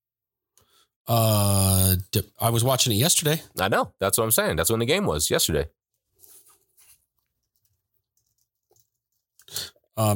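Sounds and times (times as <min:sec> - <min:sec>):
speech: 0:01.1 - 0:05.8, 0:10.0 - 0:10.1
typing on a keyboard: 0:07.4 - 0:09.2.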